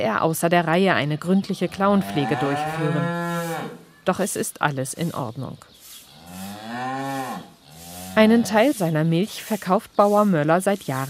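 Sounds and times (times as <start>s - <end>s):
speech: 0.0s - 3.2s, 4.0s - 5.8s, 8.2s - 11.0s
cow mooing in a long low call after milking: 1.7s - 3.8s, 6.1s - 8.7s.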